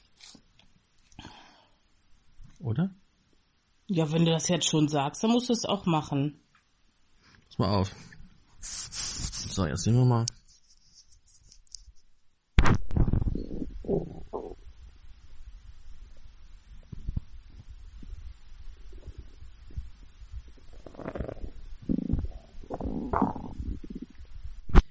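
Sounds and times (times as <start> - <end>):
speech: 2.6 - 3.0, 3.9 - 6.4, 7.6 - 8.8, 9.6 - 10.4
person's stomach rumbling recorded at the upper belly: 12.6 - 24.9.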